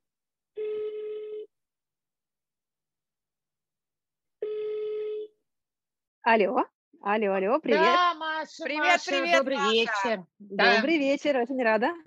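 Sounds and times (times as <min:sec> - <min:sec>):
long buzzing telephone ringback tones: 0:00.6 - 0:01.5, 0:04.4 - 0:05.3
speech: 0:06.3 - 0:12.0.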